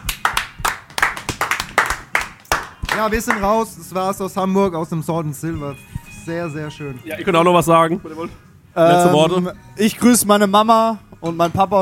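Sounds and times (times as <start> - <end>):
small group clapping: 0.0 - 3.8
speech: 3.0 - 11.8.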